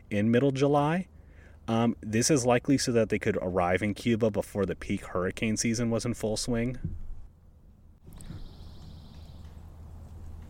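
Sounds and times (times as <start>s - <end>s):
low outdoor rumble: 0.0s - 10.4s
speech: 0.1s - 1.1s, 1.7s - 7.0s
pine warbler singing a steady even-pitched trill among pine trees: 8.1s - 9.9s.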